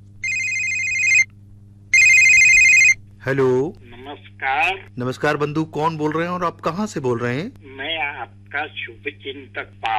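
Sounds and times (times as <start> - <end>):
faint low hum: 0.0 - 9.9
telephone ringing for an incoming caller: 0.2 - 1.3, 1.9 - 3.0
speech: 3.2 - 9.9.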